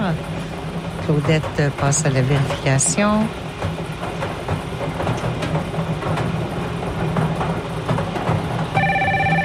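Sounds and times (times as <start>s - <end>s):
rumbling clattering background: 0.0s - 9.4s
speech: 1.1s - 3.8s
telephone ringing with electronic warbling tone: 8.8s - 9.4s.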